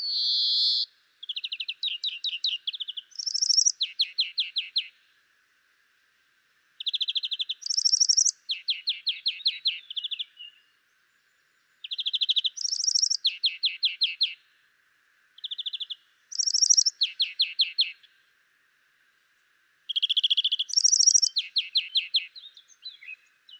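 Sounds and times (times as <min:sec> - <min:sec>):
Chloris chloris European greenfinch song of rattling trills: 0:01.2 - 0:04.5, 0:06.8 - 0:10.2, 0:11.9 - 0:14.2, 0:15.4 - 0:18.0, 0:19.9 - 0:22.3.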